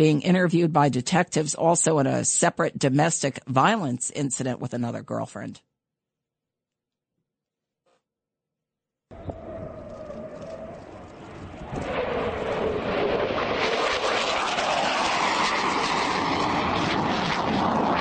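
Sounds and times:
speech: 0.0s - 5.7s
F-15 fighter jet engine roaring overhead: 9.1s - 18.0s.

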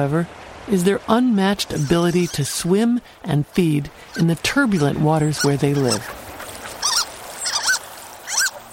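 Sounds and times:
speech: 0.0s - 6.2s
Harlequin duck Histrionicus histrionicus calls: 4.1s - 8.6s.

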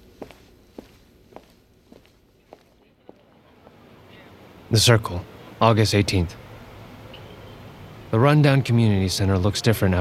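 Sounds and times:
footsteps walking away: 0.0s - 3.8s
low steady hum: 0.0s - 9.9s
speech: 4.7s - 6.4s, 8.1s - 9.9s.

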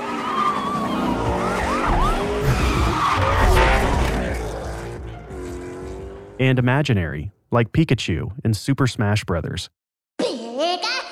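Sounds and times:
video game race car engine revving: 0.0s - 6.4s
video game race car tires squealing: 0.0s - 6.4s
speech: 6.4s - 9.8s.

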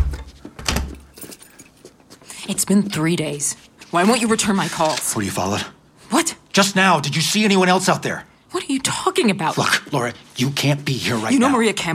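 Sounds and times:
door shutting with a thud: 0.0s - 1.0s
speech: 2.4s - 11.9s.

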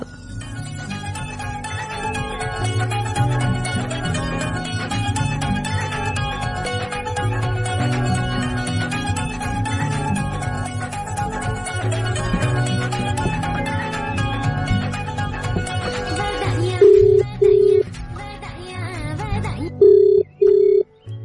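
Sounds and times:
music: 0.0s - 21.2s
ringback tones of an outgoing phone call: 16.8s - 17.9s, 19.7s - 20.9s.

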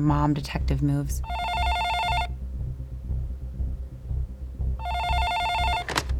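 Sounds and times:
speech: 0.0s - 1.5s
steady low throbbing background: 0.0s - 6.1s
phone ringing with a bright electronic trill: 1.2s - 2.3s, 4.8s - 6.1s.

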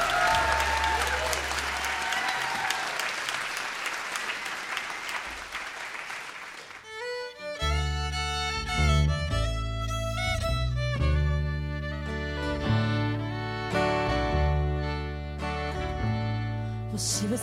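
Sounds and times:
dense audience clapping: 0.0s - 7.4s
music: 6.9s - 17.4s.

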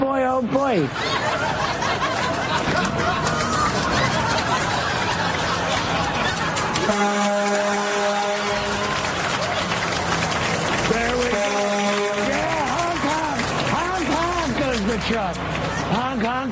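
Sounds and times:
speech: 0.0s - 1.5s
dense noisy bustle: 0.0s - 16.5s
laughter: 0.7s - 15.4s
loud sustained truck horn blaring: 6.7s - 9.8s, 10.8s - 14.0s.

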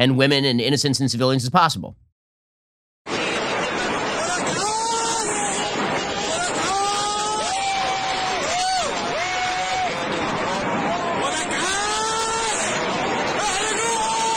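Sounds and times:
speech: 0.0s - 2.1s
crowd shouting and cheering as rockets launch: 3.1s - 14.3s.

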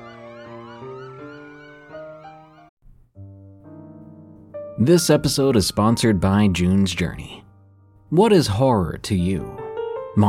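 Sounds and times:
emergency vehicle sirens wailing and warbling: 0.0s - 2.7s
speech: 4.8s - 7.4s, 8.1s - 9.6s.

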